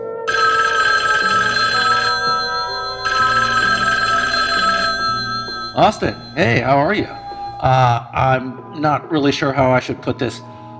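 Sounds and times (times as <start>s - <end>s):
telephone ringing: 0.3s - 7.8s
speech: 5.8s - 10.5s.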